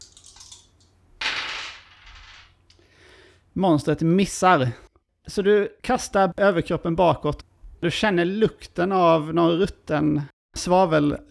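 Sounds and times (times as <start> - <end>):
two dice rolled during a game: 0.1 - 2.7
speech: 3.6 - 11.2.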